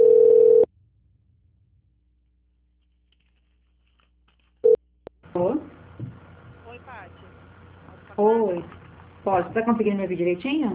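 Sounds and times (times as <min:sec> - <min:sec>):
telephone call transfer tone beep: 0:00.0 - 0:00.7
people talking over a telephone line: 0:06.6 - 0:10.7
speech: 0:08.2 - 0:10.7.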